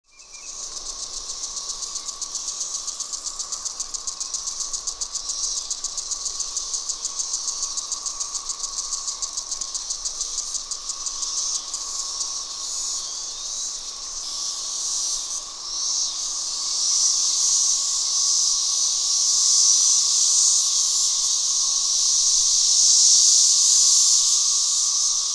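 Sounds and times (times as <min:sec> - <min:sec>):
Magicicada species: 0:00.0 - 0:25.3.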